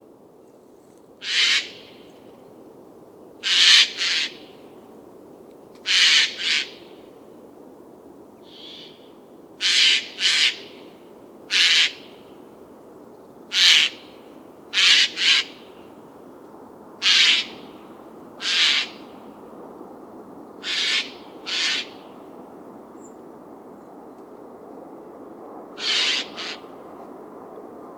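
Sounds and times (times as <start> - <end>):
jay calling: 1.2 - 1.8, 5.9 - 6.8, 8.5 - 9.0, 9.6 - 10.8, 11.5 - 12.1, 13.5 - 14.0, 14.7 - 15.7, 17.0 - 17.6, 18.4 - 19.0, 20.6 - 22.0, 25.8 - 26.6.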